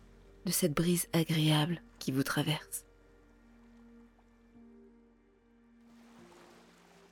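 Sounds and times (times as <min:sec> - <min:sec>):
speech: 0:00.4 - 0:02.9
gentle ocean waves washing onto a beach: 0:05.8 - 0:07.1.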